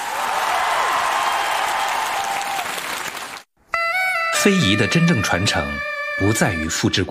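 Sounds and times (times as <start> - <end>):
large audience applauding after a suona performance on a rainy night: 0.0 - 3.5
speech: 4.4 - 7.0.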